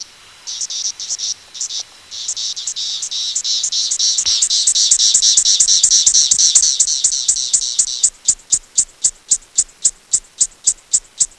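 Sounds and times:
Magicicada septendecula periodical cicada calling song: 0.0 - 11.3.

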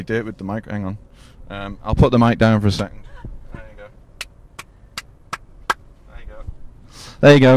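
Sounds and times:
speech: 0.0 - 3.1, 7.2 - 7.5
road traffic rumble outside: 0.0 - 7.5
hand claps: 4.2 - 5.8.

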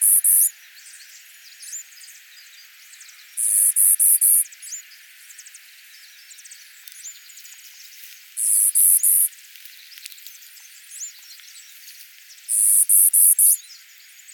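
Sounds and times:
Clay-colored sparrow giving high flat insect-like buzzes: 0.0 - 0.5, 3.4 - 4.5, 8.4 - 9.3, 12.5 - 13.6
faint bird chatter: 0.0 - 14.3.

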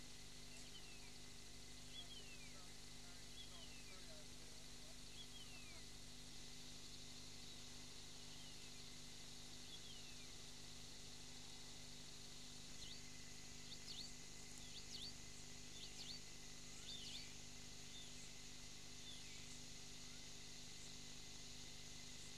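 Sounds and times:
steady low hum and hiss: 0.0 - 22.3
White-eared monarch descending whistled slurs: 0.4 - 6.0, 7.3 - 10.4, 12.7 - 18.3.

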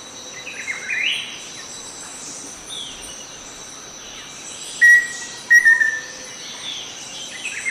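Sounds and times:
dense insect chirring: 0.0 - 7.6
bird calls: 0.4 - 7.6
Black-faced antthrush Formicarius analis whistled song: 4.8 - 6.1.

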